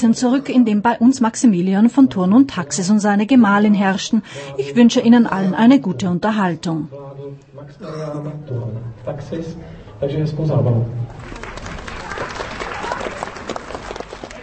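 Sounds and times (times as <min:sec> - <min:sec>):
speech: 0:00.0 - 0:11.4
audience applause, many hands clapping: 0:11.1 - 0:14.4.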